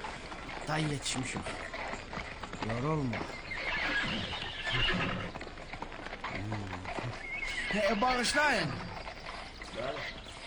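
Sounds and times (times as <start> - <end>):
speech: 0.7 - 1.7, 2.6 - 5.4, 6.4 - 8.9, 9.8 - 10.2
horse neighing: 2.6 - 5.4, 6.2 - 8.9.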